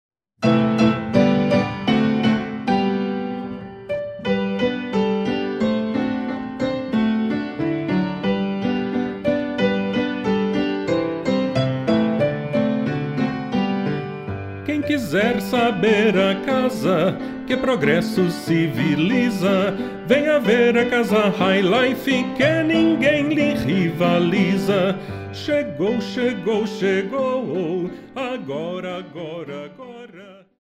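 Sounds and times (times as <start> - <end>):
fortepiano: 0.4 - 30.5.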